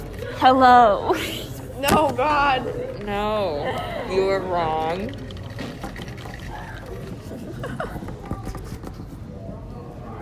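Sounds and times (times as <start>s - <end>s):
speech: 0.4s - 5.3s
liquid being poured: 3.7s - 7.6s
laughter: 7.2s - 8.5s.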